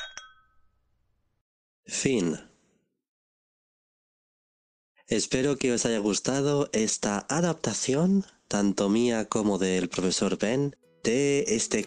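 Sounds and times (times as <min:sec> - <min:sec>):
crystal wine glasses filled with red wine clinking in a toast: 0:00.0 - 0:00.7, 0:11.1 - 0:11.8
clear ringing tone of crystal wine glasses: 0:00.0 - 0:00.8
speech: 0:01.9 - 0:02.5, 0:05.1 - 0:11.8.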